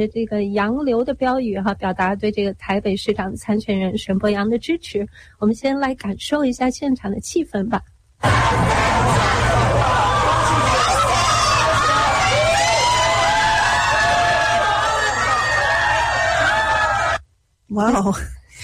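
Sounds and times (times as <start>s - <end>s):
speech: 0.0s - 9.4s, 17.7s - 18.6s
high-pitched shrieks and whoops from a crowd: 8.2s - 17.2s
large crowd in San Francisco screaming and cheering: 8.2s - 17.2s.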